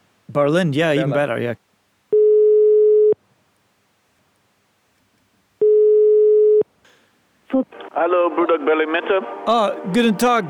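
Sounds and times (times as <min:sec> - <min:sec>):
speech: 0:00.3 - 0:01.7, 0:07.5 - 0:10.4
phone line ringing out on a call to a restaurant in Berlin: 0:02.1 - 0:03.2, 0:05.6 - 0:06.7.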